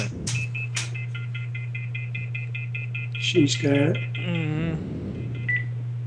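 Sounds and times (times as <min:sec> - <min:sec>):
steady low electrical hum: 0:00.0 - 0:06.0
small office phone electronic ringtone with beeps and warbling tone: 0:00.5 - 0:04.4.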